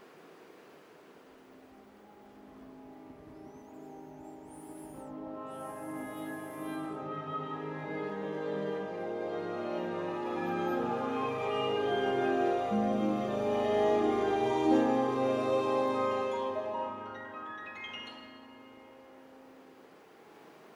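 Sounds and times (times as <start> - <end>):
piano in the highest range: 1.6 - 19.8
orchestral strings in an alarm-clock melody: 1.7 - 19.6
orchestral woodwinds: 1.8 - 17.7
harp in the highest range: 1.8 - 19.6.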